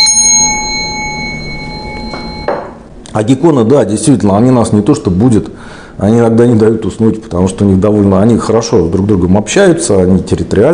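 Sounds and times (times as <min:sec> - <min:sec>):
small bell ringing: 0:00.0 - 0:02.8
speech: 0:03.2 - 0:10.7.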